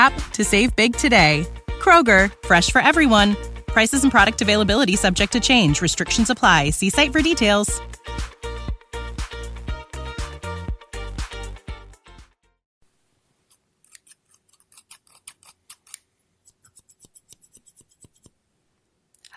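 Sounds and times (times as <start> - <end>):
speech: 0.0 - 8.3
several pairs of scissors snipping and cutting paper: 13.5 - 18.4.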